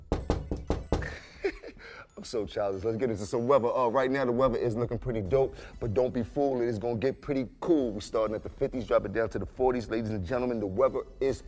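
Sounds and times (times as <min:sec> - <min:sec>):
door knocker knocking: 0:00.0 - 0:01.1
speech: 0:02.2 - 0:11.4.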